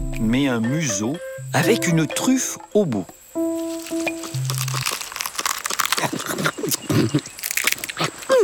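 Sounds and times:
brief electronic tones: 0.0s - 2.8s, 3.4s - 4.8s
speech: 0.2s - 3.2s, 7.0s - 7.3s
lemur chewing tough leaves and tamarind pods: 3.6s - 8.4s.

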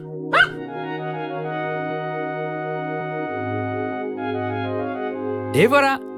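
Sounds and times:
sustained musical drone: 0.0s - 6.1s
dog barking: 0.3s - 0.7s
speech: 5.5s - 6.1s.

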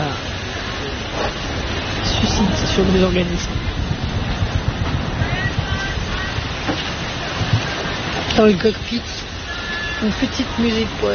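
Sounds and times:
rough sea with heavy swell around a sailing boat's cockpit: 0.0s - 11.1s
wind at sea: 0.0s - 11.1s
low irregular thumps: 2.5s - 5.6s, 6.4s - 8.4s
speech: 2.8s - 3.7s, 8.4s - 9.2s, 10.0s - 11.1s.

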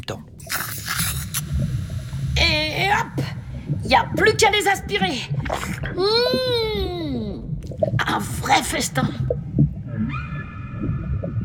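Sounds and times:
low rumbling background: 0.0s - 11.4s
speech: 0.1s - 0.5s, 3.0s - 7.2s, 7.8s - 9.4s
female whale call: 9.9s - 11.4s.

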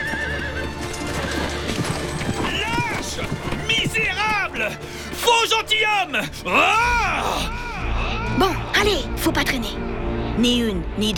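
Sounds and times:
horse whinnying: 0.0s - 4.3s
horse hooves galloping: 0.0s - 5.5s
speech: 5.4s - 7.6s, 8.4s - 11.1s.

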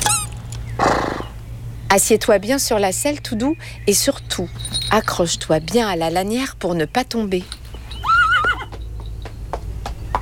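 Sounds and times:
small red pony whinny: 0.8s - 1.4s, 8.0s - 8.7s
speech: 2.0s - 7.6s
small red pony hooves clip-clopping at a walk: 4.5s - 5.2s, 7.3s - 10.2s.

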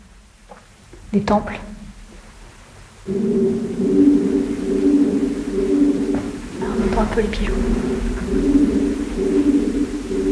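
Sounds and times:
speech: 1.1s - 1.8s, 3.1s - 4.0s, 7.0s - 8.6s
pigeons cooing echoing in a cave: 3.1s - 10.2s.

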